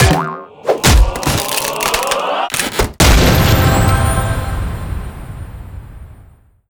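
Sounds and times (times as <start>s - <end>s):
item crate smashing: 0.0s - 3.8s.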